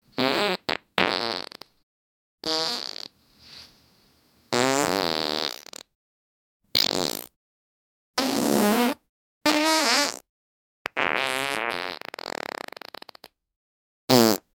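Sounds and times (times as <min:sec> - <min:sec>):
farts: 0:00.2 - 0:01.8, 0:02.4 - 0:03.2, 0:04.5 - 0:06.0, 0:06.7 - 0:07.4, 0:08.2 - 0:13.4, 0:14.1 - 0:14.5.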